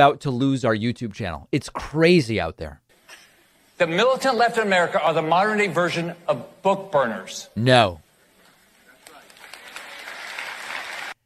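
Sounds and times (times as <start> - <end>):
speech: 0.0 - 2.8, 3.8 - 8.0
crowd audience applause: 8.8 - 11.2.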